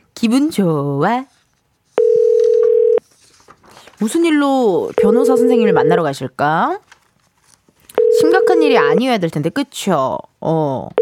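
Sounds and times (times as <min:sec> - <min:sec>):
speech: 0:00.2 - 0:01.4, 0:04.0 - 0:06.9, 0:08.2 - 0:11.0
telephone dial tone while placing call: 0:02.0 - 0:03.0, 0:05.0 - 0:06.0, 0:08.0 - 0:09.0.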